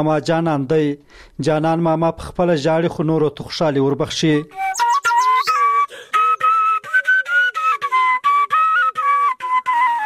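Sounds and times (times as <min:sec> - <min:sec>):
speech: 0:00.0 - 0:04.8
shepherd's flute playing a bright melody in a village in a green valley: 0:04.5 - 0:10.0.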